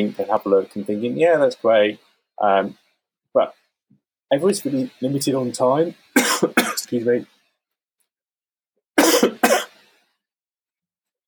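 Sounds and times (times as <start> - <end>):
speech: 0.0 - 2.8, 3.4 - 3.6, 4.3 - 7.4
harsh coughs: 6.2 - 6.9, 9.0 - 9.8.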